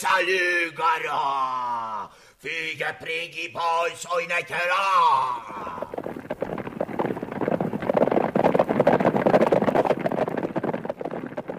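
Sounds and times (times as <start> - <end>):
speech: 0.0 - 6.6
horse galloping: 5.4 - 11.5.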